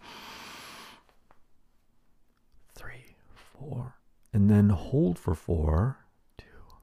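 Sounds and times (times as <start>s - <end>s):
sharp nasal inhale during a guided breathing exercise: 0.0s - 1.1s
speech: 3.0s - 6.0s.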